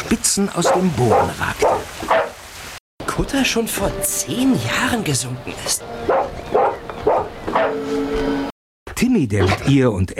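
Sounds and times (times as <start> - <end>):
speech: 0.3 - 2.2, 3.2 - 6.5, 9.0 - 10.1
dog barking loudly: 0.6 - 2.4, 6.1 - 7.8.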